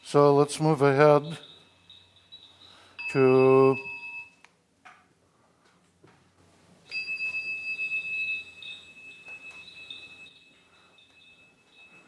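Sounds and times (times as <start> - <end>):
speech: 0.1 - 1.5, 3.1 - 3.9
temple bell ringing in monastery ceremony: 0.9 - 4.4, 6.9 - 12.0.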